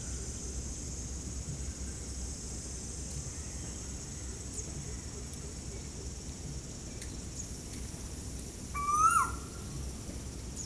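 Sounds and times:
faint background hiss: 0:00.0 - 0:10.6
Asian koel Eudynamys scolopaceus whistled call at Ezhimala, Kannur, Kerala: 0:08.8 - 0:09.4.

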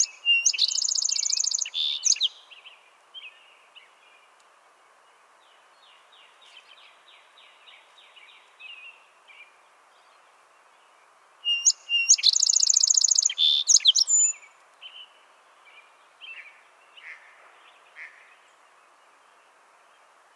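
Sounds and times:
quiet thin chirps: 0:00.0 - 0:02.2, 0:11.5 - 0:14.3
song sparrow Melospiza melodia singing: 0:00.0 - 0:04.4, 0:05.4 - 0:20.3.

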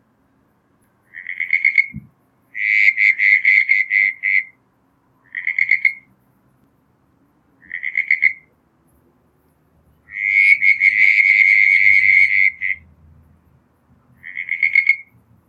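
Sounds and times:
southern brown tree frog Litoria ewingii pulsed calls: 0:01.0 - 0:04.6, 0:05.2 - 0:06.1, 0:07.6 - 0:08.6, 0:10.0 - 0:12.9, 0:14.2 - 0:15.2.

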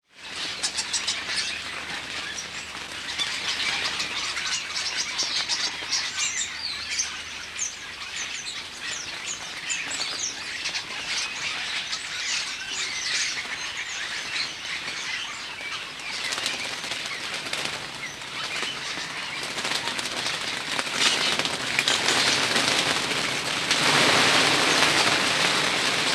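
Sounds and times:
flock of common starlings (Sturnus vulgaris) chattering: 0:00.2 - 0:26.1.

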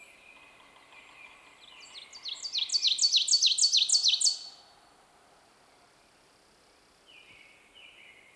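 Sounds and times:
Ovenbird Seiurus aurocapilla singing: 0:01.2 - 0:04.6.

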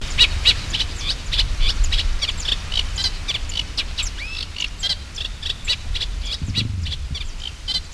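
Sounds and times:
Eurasian reed warbler Acrocephalus scirpaceus singing: 0:00.0 - 0:07.9
low background rumble: 0:06.1 - 0:07.9.

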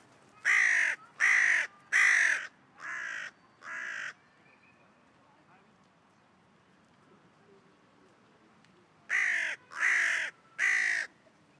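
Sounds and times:
Corvus corone carrion crow cawing: 0:00.4 - 0:04.2, 0:09.1 - 0:11.1.

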